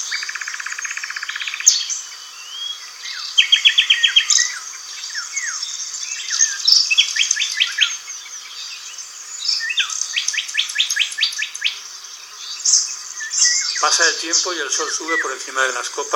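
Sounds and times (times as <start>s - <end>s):
nightingale singing: 0.0s - 16.1s
steady high insect-like hum: 0.0s - 16.1s
speech: 13.9s - 16.1s.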